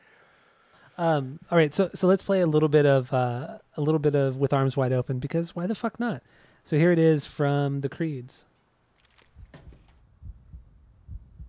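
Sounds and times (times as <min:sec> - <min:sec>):
speech: 0:01.0 - 0:08.5
deep heartbeat in a song intro: 0:09.4 - 0:11.4.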